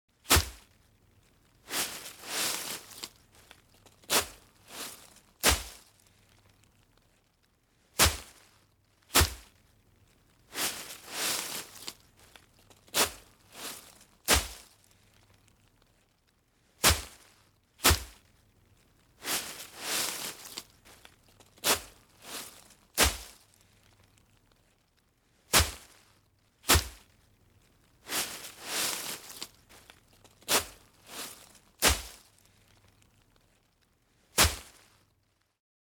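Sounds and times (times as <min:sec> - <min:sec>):
raking foliage leaves on grass: 0:00.3 - 0:00.6, 0:01.7 - 0:06.1, 0:09.2 - 0:09.5, 0:10.5 - 0:12.3, 0:12.9 - 0:14.8, 0:16.8 - 0:18.2, 0:19.2 - 0:23.5, 0:25.5 - 0:26.0, 0:26.7 - 0:27.1, 0:28.1 - 0:32.3, 0:34.4 - 0:34.8.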